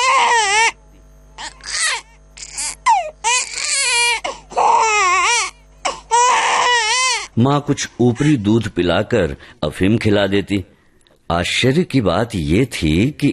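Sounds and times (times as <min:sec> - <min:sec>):
hungry infant crying: 0:00.0 - 0:00.8, 0:01.4 - 0:07.3
speech: 0:07.4 - 0:13.3.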